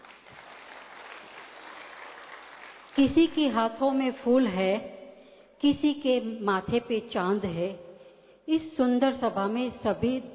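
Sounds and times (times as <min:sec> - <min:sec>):
audience applause after a stage play at a community gathering: 0:00.0 - 0:03.0
speech: 0:03.0 - 0:05.0, 0:05.6 - 0:07.9, 0:08.5 - 0:10.3.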